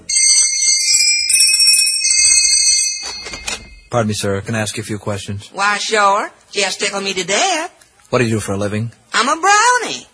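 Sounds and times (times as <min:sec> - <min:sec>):
door bell at a workshop door ringing: 0:00.0 - 0:04.0
speech: 0:03.9 - 0:10.1.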